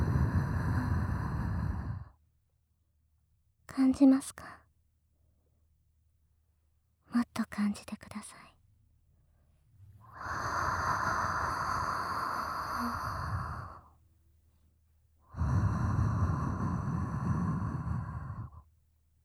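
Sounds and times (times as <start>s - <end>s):
heavy exhalations close to the microphone: 0.0s - 2.1s, 10.0s - 13.9s, 15.3s - 18.6s
speech: 3.7s - 4.6s, 7.1s - 8.5s.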